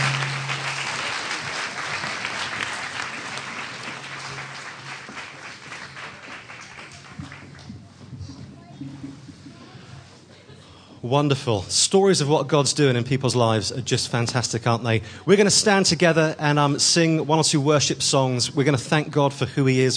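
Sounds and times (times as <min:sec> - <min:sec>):
audience applauding a man: 0:00.0 - 0:07.8
speech: 0:11.1 - 0:19.9.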